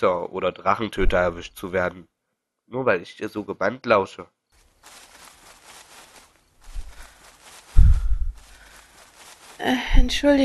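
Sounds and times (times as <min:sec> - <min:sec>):
speech: 0:00.0 - 0:02.1, 0:02.7 - 0:05.0, 0:09.6 - 0:10.4
heavy footsteps on ground: 0:04.6 - 0:10.4.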